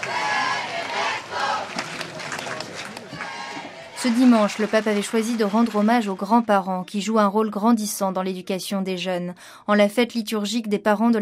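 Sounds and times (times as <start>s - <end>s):
large crowd of the faithful cheering and shouting on an esplanade: 0.0s - 2.0s, 2.6s - 4.2s
speech: 4.0s - 11.2s.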